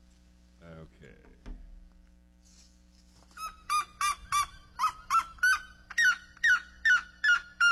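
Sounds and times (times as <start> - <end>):
red-legged seriema calling: 3.4 - 7.6.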